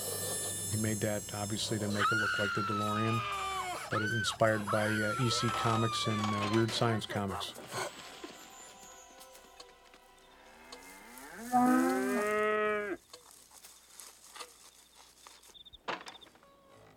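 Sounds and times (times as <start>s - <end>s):
speech: 0.8s - 7.9s
cow mooing near a barn: 10.5s - 13.0s.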